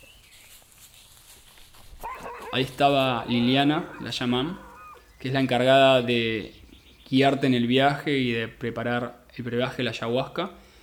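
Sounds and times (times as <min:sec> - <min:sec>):
several dogs barking and yipping: 0:02.0 - 0:05.1
speech: 0:02.5 - 0:10.6.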